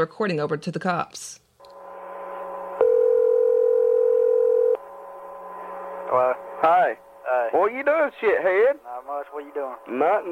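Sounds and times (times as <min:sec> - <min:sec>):
speech: 0:00.0 - 0:01.4, 0:06.1 - 0:10.2
quiet telephone line hiss: 0:01.3 - 0:10.2
telephone dial tone: 0:02.8 - 0:04.8.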